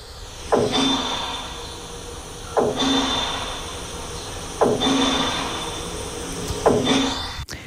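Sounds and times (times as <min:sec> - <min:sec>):
construction machinery roar heard from indoors: 0:00.0 - 0:07.4
rhythmic surges or thuds: 0:00.0 - 0:07.4.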